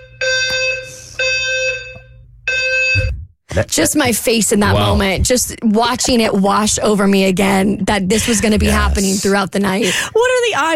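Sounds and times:
fire alarm blaring in harsh electronic bursts: 0.0 - 3.2
speech: 3.6 - 10.7.

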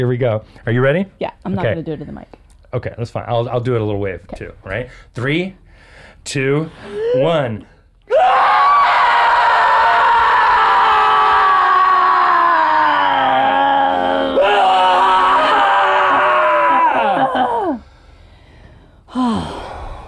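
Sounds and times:
speech: 0.0 - 8.3
several voices groaning loudly together: 6.8 - 7.4, 8.1 - 17.9, 19.1 - 20.0.

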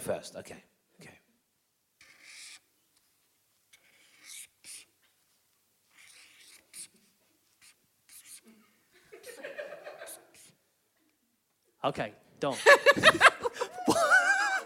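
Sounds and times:
speech: 0.0 - 0.7, 11.8 - 13.3
pen scratching on paper: 2.0 - 2.7, 3.7 - 4.9, 5.8 - 8.5
laughter: 9.0 - 10.4, 12.5 - 14.6.

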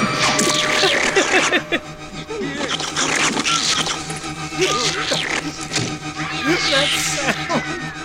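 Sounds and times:
laughter: 0.4 - 8.0
dense scratchy noise: 0.6 - 8.0
cat meowing in overlapping yowls: 6.0 - 8.0.

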